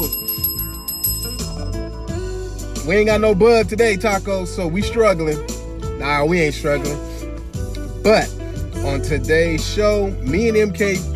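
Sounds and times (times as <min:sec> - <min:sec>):
bright metallic bell ringing: 0:00.0 - 0:02.9
speech: 0:02.8 - 0:07.1, 0:08.0 - 0:11.1.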